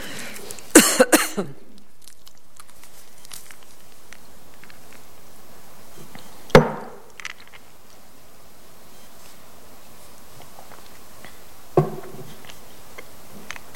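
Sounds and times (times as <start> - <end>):
person coughing from a throat tickle: 0.7 - 1.7.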